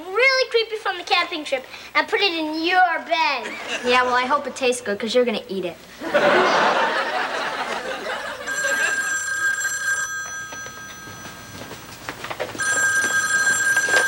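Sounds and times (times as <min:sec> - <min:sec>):
speech: 0:00.6 - 0:06.9
laughter: 0:03.4 - 0:04.0, 0:06.0 - 0:09.2
telephone ringing loudly: 0:08.0 - 0:14.0.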